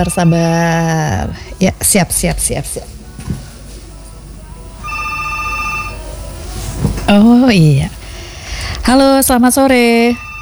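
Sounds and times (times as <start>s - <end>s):
telephone ringing with an incoming call: 0.0s - 1.4s, 4.8s - 6.6s, 9.7s - 10.4s
speech: 0.0s - 3.0s, 7.1s - 8.0s, 8.8s - 10.2s
low steady noise: 0.0s - 10.4s.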